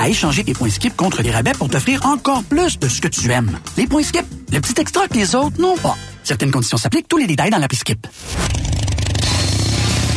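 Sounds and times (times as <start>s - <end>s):
speech: 0.0s - 8.7s
Harley-Davidson motorcycle engine rumbling and revving: 8.3s - 10.1s.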